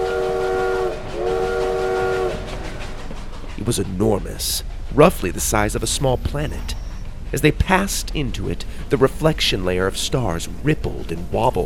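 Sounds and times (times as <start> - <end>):
train whistle: 0.0 - 3.0
continuous loud rumble of a moving train: 0.0 - 11.6
speech: 3.7 - 11.6.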